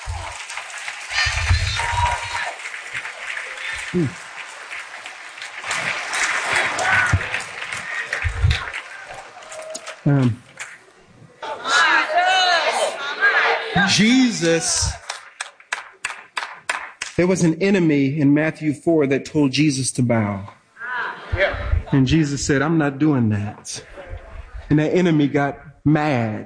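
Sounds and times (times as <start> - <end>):
church congregation cheering, shouting and clapping: 0.0 - 10.1, 11.4 - 15.0
speech: 3.9 - 4.2, 10.0 - 10.5, 13.9 - 15.0, 17.2 - 20.6, 21.4 - 23.9, 24.7 - 26.4.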